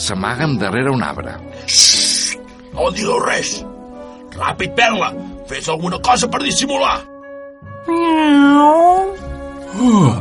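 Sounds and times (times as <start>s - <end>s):
speech: 0.0s - 2.1s, 2.7s - 3.8s, 4.4s - 7.1s, 7.9s - 8.8s, 9.8s - 10.2s
person imitating a cat meowing: 1.7s - 2.4s, 7.9s - 9.2s.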